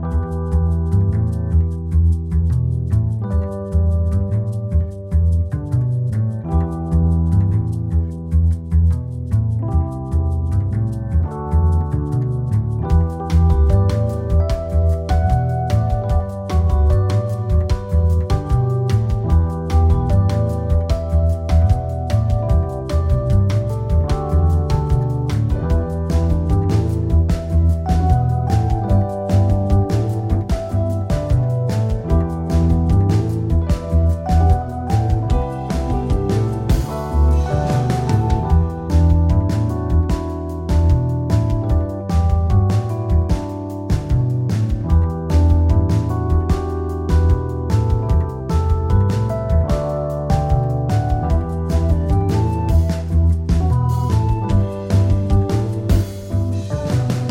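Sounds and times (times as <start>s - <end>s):
lobby music: 0.0s - 57.3s.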